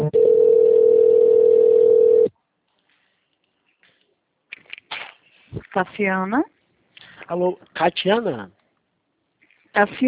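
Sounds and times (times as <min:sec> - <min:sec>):
telephone line tone while a call is transferred: 0:00.1 - 0:02.3
speech: 0:05.8 - 0:06.5, 0:07.3 - 0:08.6, 0:09.7 - 0:10.0.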